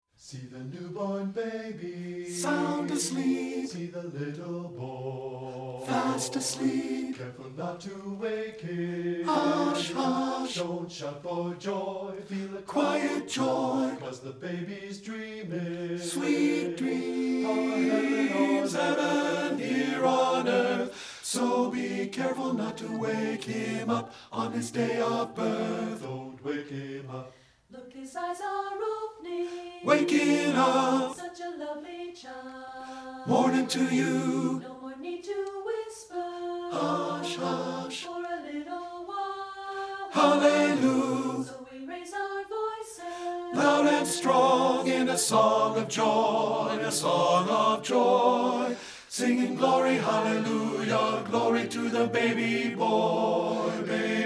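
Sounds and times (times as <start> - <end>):
tenor part of SATB choir singing: 0.2 - 54.2.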